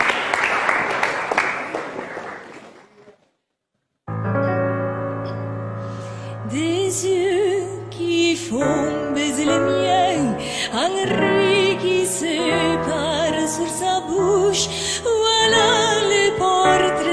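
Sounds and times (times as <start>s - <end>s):
audience applause: 0.0s - 3.2s
sustained instrumental music: 4.1s - 17.1s
person singing: 6.3s - 17.1s.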